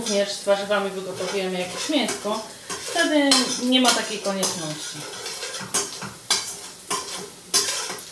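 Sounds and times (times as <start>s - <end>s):
onions glazed in butter and oil sizzling in a pan: 0.0s - 8.0s
speech: 0.1s - 5.8s.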